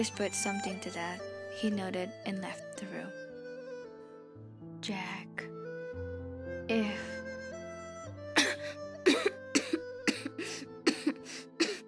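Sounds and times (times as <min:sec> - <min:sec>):
speech: 0:00.0 - 0:03.2, 0:04.8 - 0:05.5, 0:06.7 - 0:07.2
fit of harsh coughing: 0:08.4 - 0:11.8.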